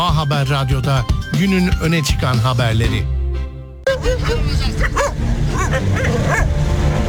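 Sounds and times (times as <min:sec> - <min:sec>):
speech: 0:00.2 - 0:03.1, 0:03.9 - 0:06.8
several stray street dogs barking and yelping: 0:03.9 - 0:06.9.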